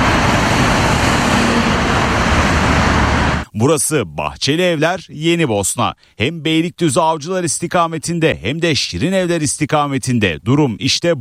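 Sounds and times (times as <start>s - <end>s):
heavy congested rush hour traffic on the D100 highway in Istanbul: 0.0s - 3.5s
speech: 3.6s - 11.1s.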